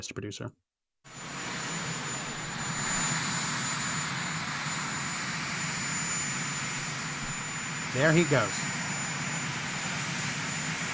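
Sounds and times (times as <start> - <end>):
speech: 0.0 - 1.2, 7.9 - 8.7
presidential helicopter turbine engine roaring: 1.1 - 10.9.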